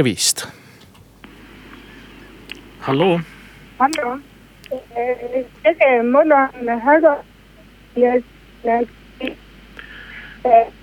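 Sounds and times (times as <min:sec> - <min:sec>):
speech: 0:00.0 - 0:00.6, 0:02.8 - 0:07.3, 0:08.0 - 0:09.4, 0:10.4 - 0:10.8
phone line hiss: 0:01.1 - 0:10.8
garbled caller voice over a poor phone connection: 0:03.8 - 0:07.2, 0:10.4 - 0:10.8.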